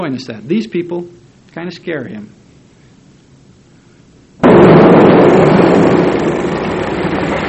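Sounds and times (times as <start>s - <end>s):
speech: 0.0s - 2.4s
gunshot: 4.4s - 7.4s.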